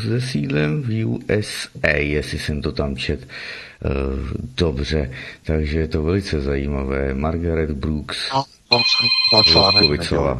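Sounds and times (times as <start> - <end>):
speech: 0.0 - 10.3
telephone ringing with a high electronic trill: 8.7 - 10.1.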